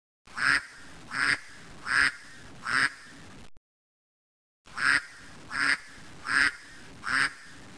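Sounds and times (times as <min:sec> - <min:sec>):
duck quacking: 0:00.3 - 0:03.1, 0:04.7 - 0:07.6.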